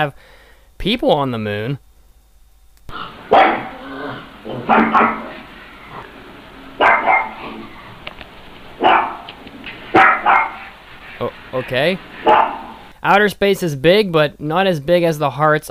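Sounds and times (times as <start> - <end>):
speech: 0.0 - 1.8, 4.7 - 5.4, 11.2 - 15.6
dog barking: 2.9 - 8.0, 8.8 - 10.8, 12.2 - 12.9.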